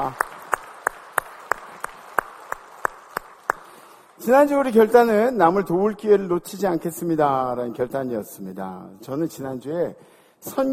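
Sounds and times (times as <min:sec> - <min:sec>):
speech: 0:00.0 - 0:00.2, 0:04.2 - 0:10.7
church audience clapping in rhythm after worship singing: 0:00.0 - 0:05.3.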